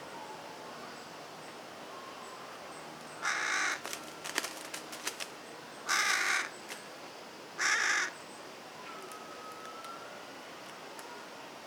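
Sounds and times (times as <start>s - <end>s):
Carrion crow cawing harsh and raspy: 3.2s - 3.9s, 5.9s - 6.5s, 7.6s - 8.2s.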